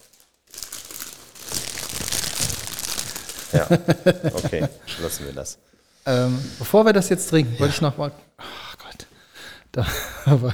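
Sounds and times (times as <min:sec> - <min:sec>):
bag being crinkled: 0:00.0 - 0:04.9
laughter: 0:03.5 - 0:05.4
speech: 0:03.5 - 0:08.5, 0:09.8 - 0:10.5.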